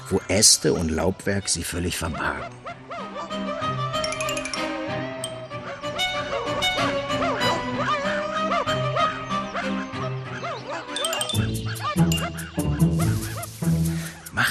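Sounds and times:
speech: 0.1s - 2.8s
pack of hunting dogs barking and yelping: 2.4s - 13.6s.

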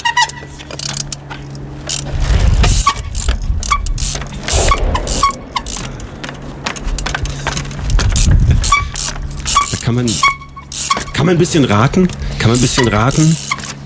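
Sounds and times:
bicycle ridden and climbed over concrete blocks: 0.0s - 5.2s, 6.2s - 13.8s
speech: 9.9s - 10.4s, 11.2s - 13.4s.

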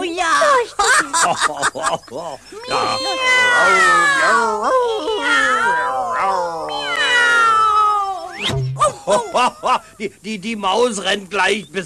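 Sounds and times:
laughter: 0.5s - 5.0s, 8.8s - 10.2s
speech: 0.7s - 6.8s, 8.4s - 11.8s
cat yowling: 2.6s - 8.5s.

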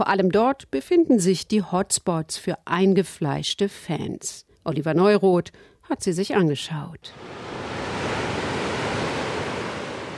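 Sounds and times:
speech: 0.0s - 7.6s
sea surf washing against the shore near San Juan de Castellugache: 7.1s - 10.1s.

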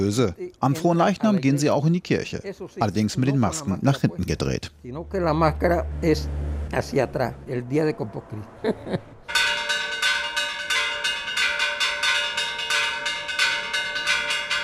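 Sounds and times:
speech: 0.0s - 9.1s
church bell being drummed during Corpus Christi festivities in Parita: 9.3s - 14.6s.

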